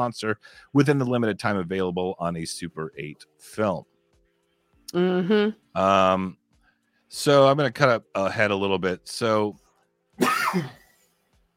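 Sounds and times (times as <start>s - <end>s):
speech: 0.0s - 3.9s, 4.9s - 6.4s, 7.1s - 9.6s, 10.2s - 10.8s
person coughing: 10.2s - 10.9s.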